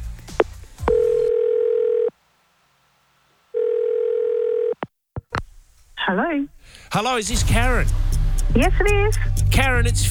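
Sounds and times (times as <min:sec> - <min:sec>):
telephone line tone beeps: 0:00.9 - 0:02.1, 0:03.6 - 0:04.8
speech: 0:06.1 - 0:10.0.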